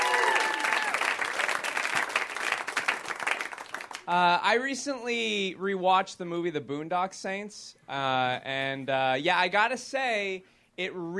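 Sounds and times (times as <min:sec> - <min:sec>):
crowd applauding: 0:00.0 - 0:04.2
speech: 0:04.1 - 0:11.1.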